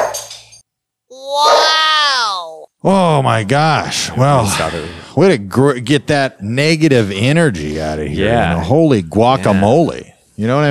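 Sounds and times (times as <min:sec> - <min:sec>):
dog barking: 0:01.4 - 0:01.7
speech: 0:02.8 - 0:10.6.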